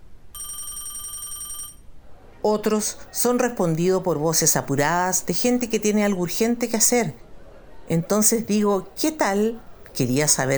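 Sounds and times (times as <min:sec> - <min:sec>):
faint hiss: 0:00.0 - 0:10.5
telephone ringing unanswered: 0:00.3 - 0:01.9
speech: 0:02.4 - 0:07.2, 0:07.9 - 0:10.5.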